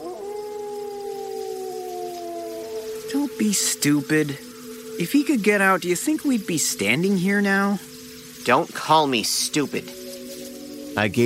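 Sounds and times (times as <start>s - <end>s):
Rottweiler letting out a low howl: 0.0s - 5.2s
speech: 3.1s - 10.0s, 11.0s - 11.2s.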